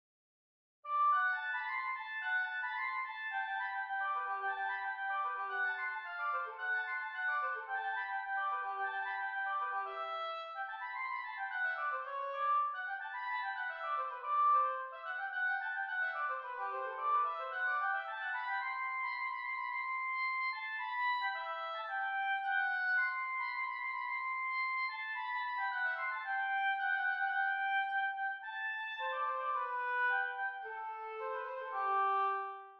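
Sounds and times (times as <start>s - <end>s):
oboe: 0.9s - 32.7s.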